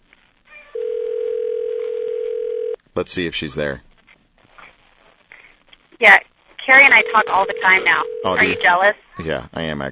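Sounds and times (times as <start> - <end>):
steady telephone tone after dialing: 0.7 - 2.8, 6.9 - 8.8
speech: 3.0 - 3.9, 6.0 - 6.3, 7.0 - 9.9.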